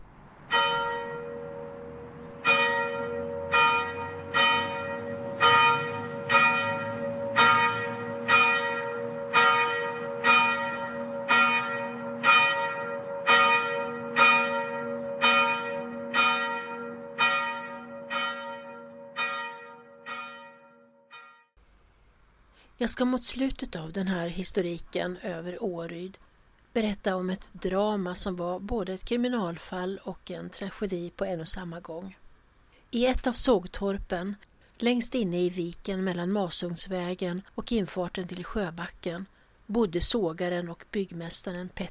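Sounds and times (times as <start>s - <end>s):
church bell tolling in a bell tower: 0.5s - 21.5s
speech: 22.8s - 32.2s, 32.9s - 41.8s.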